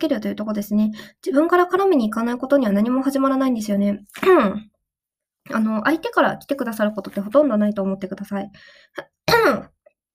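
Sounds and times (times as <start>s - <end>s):
speech: 0.0s - 4.7s, 5.5s - 9.7s
throat clearing: 9.0s - 9.8s.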